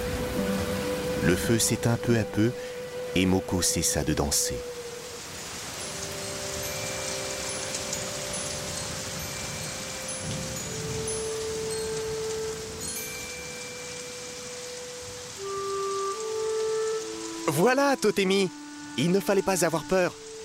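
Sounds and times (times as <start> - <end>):
faint sustained tones: 0.0 - 20.4
steady rain: 0.0 - 20.4
speech: 1.2 - 4.8, 17.5 - 20.2.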